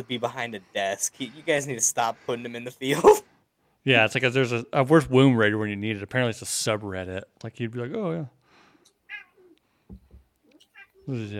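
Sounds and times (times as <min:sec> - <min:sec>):
speech: 0:00.0 - 0:08.4, 0:11.1 - 0:11.3
cat meowing: 0:09.1 - 0:09.6, 0:10.6 - 0:11.1
soft thumps: 0:09.8 - 0:10.4.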